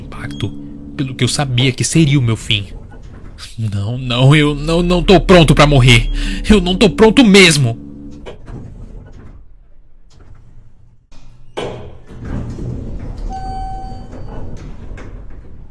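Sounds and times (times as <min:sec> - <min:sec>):
humming tone: 0:00.0 - 0:03.4, 0:04.0 - 0:09.4
elevator doors sliding open: 0:00.0 - 0:15.7
speech: 0:00.2 - 0:02.8, 0:03.5 - 0:07.8.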